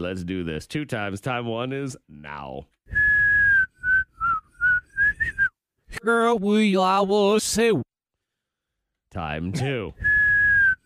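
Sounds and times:
speech: 0:00.0 - 0:02.8, 0:05.9 - 0:07.9, 0:09.1 - 0:10.1
whistled tune played backward: 0:02.9 - 0:05.6, 0:10.0 - 0:10.8.

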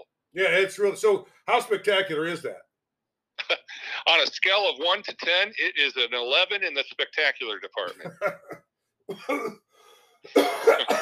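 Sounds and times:
speech: 0:00.4 - 0:02.6, 0:03.5 - 0:09.6, 0:10.2 - 0:11.0
person recovering from the flu coughing harshly: 0:07.9 - 0:09.7, 0:10.3 - 0:11.0.

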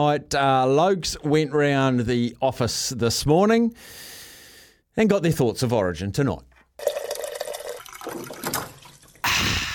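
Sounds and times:
speech: 0:00.0 - 0:04.1, 0:05.0 - 0:07.0
water pouring and gurgling as a water cooler is filled: 0:06.8 - 0:09.7
water splashing in a louder fuller burst: 0:07.0 - 0:09.5.

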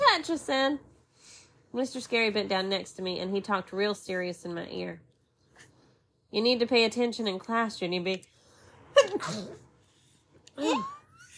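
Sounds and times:
speech: 0:00.2 - 0:00.9, 0:01.7 - 0:05.1, 0:06.3 - 0:08.3, 0:08.9 - 0:09.6, 0:10.6 - 0:11.0
person sneezing: 0:09.0 - 0:09.6.

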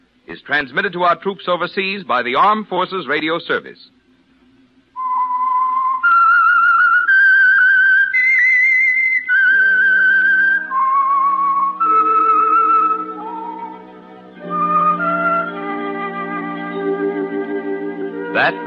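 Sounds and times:
speech: 0:00.3 - 0:04.0
whistled radio program theme melody: 0:05.0 - 0:18.6
orchestral accompaniment: 0:10.0 - 0:18.6.

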